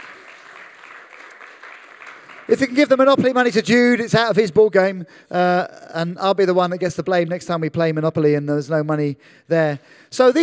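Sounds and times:
audience applauding actors after a performance: 0.0 - 3.1
speech: 2.5 - 10.4.

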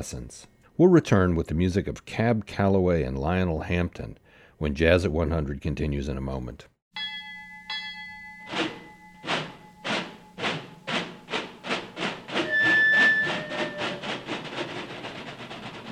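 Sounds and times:
speech: 0.0 - 6.7
steam locomotive whistle: 9.2 - 14.5
steam locomotive chuffing: 9.4 - 15.8.

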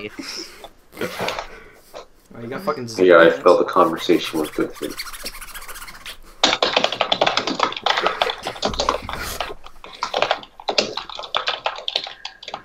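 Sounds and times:
speech: 0.0 - 1.6, 2.3 - 5.4
rapid loud banging on a computer keyboard: 6.4 - 12.6.

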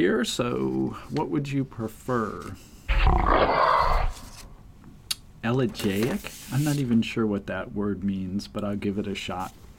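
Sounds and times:
speech: 0.0 - 3.8, 5.4 - 9.6
mountain lion growl: 2.9 - 4.2.

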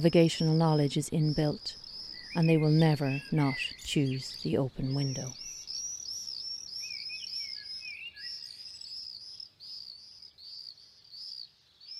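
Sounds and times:
speech: 0.0 - 5.4
birds chirping high bright phrases: 0.0 - 11.9
lower whistled bird notes: 1.2 - 9.2.

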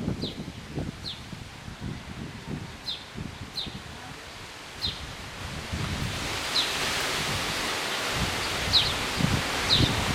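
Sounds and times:
wind rushing through trees on a windy day in northeastern France: 0.0 - 10.1
faint birds chirping: 0.2 - 1.3, 2.3 - 5.1, 6.4 - 6.8, 7.8 - 10.0.

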